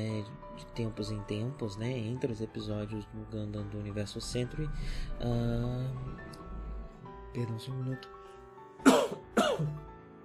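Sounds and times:
speech: 0.0s - 6.4s, 7.3s - 8.2s, 8.8s - 9.9s
person coughing from mate powder in throat: 8.8s - 9.8s.

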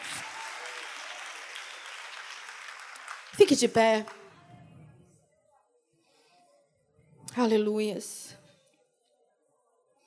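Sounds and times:
audience applauding: 0.0s - 4.3s
speech: 3.3s - 4.2s, 7.4s - 8.4s.

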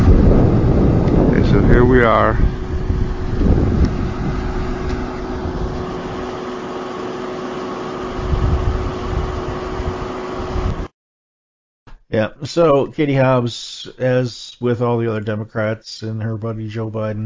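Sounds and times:
helicopter engine and rotor in flight: 0.0s - 10.9s
speech: 1.9s - 2.5s, 12.1s - 17.2s.

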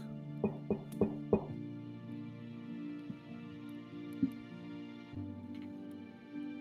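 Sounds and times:
soft sustained musical drone: 0.0s - 6.6s
knocking on a wooden door: 0.4s - 1.6s.

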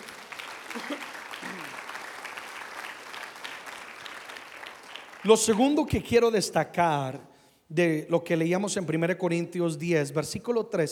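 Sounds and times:
large audience applauding: 0.0s - 5.9s
speech: 5.2s - 10.9s.

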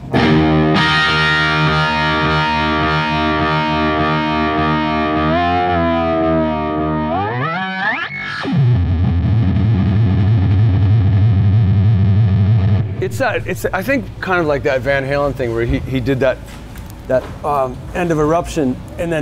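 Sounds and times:
electric guitar noises through a delay pedal: 0.0s - 14.3s
speech: 13.1s - 19.2s.

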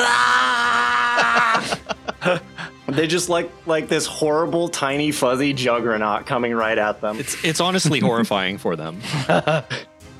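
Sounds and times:
person screaming an imitation battle cry: 0.0s - 1.7s
laughter: 0.8s - 3.1s, 7.1s - 9.9s
speech: 1.4s - 10.1s.

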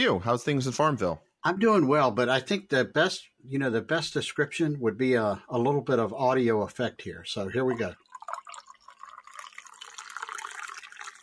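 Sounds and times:
speech: 0.0s - 8.0s
coffee pouring into a cup: 7.6s - 11.2s.

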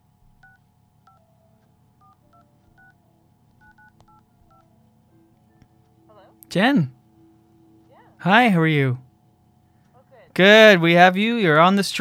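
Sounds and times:
low hum: 0.0s - 11.9s
telephone keypad dialing tones: 0.4s - 8.2s
speech: 6.5s - 7.0s, 8.2s - 9.0s, 10.4s - 11.9s.

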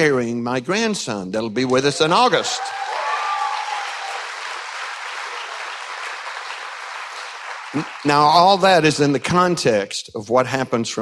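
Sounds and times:
speech: 0.0s - 2.9s, 7.8s - 11.0s
audience applause: 1.8s - 9.3s.

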